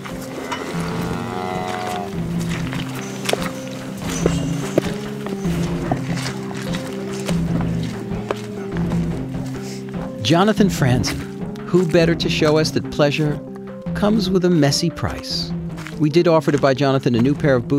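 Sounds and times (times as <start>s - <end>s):
herd of hundreds of cows mooing: 0.0s - 7.5s
cow hooves clopping and shuffling: 0.0s - 14.3s, 15.4s - 17.7s
speech: 10.3s - 17.7s.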